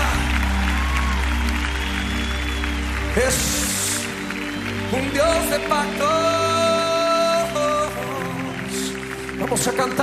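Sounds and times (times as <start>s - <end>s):
church congregation clapping during a worship hymn: 0.0s - 10.0s
speech: 3.2s - 3.6s, 4.9s - 6.6s, 9.5s - 10.0s.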